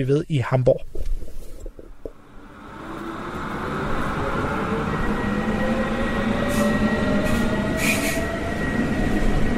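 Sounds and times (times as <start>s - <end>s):
speech: 0.0s - 1.0s
commuter S-Bahn train rumbling into a station platform in Hamburg, Germany: 2.1s - 9.5s.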